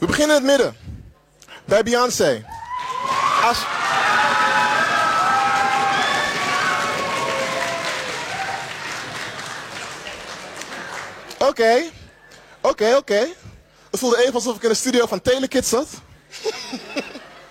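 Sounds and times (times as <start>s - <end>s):
speech: 0.0s - 0.8s, 1.7s - 2.6s, 3.4s - 3.8s, 11.5s - 12.0s, 12.6s - 13.4s, 14.0s - 17.1s
excited shouting and cheering voices: 2.5s - 9.5s
large crowd clapping and stomping on the floor: 2.5s - 11.4s
laughter: 16.3s - 17.4s.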